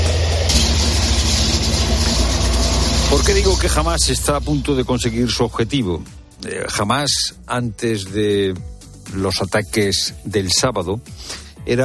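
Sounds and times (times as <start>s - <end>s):
tanks rumbling at the border fence between the Gaza Strip and Israel: 0.0s - 5.7s
speech: 3.2s - 11.8s.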